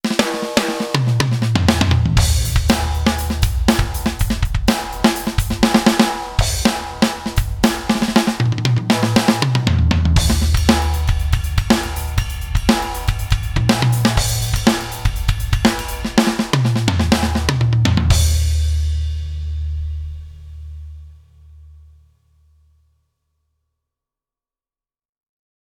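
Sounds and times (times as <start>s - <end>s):
electronic drum kit test: 0.0s - 20.3s.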